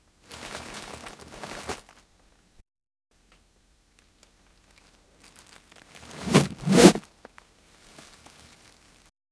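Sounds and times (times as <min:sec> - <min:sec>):
bag dropping lightly: 0:05.9 - 0:07.0.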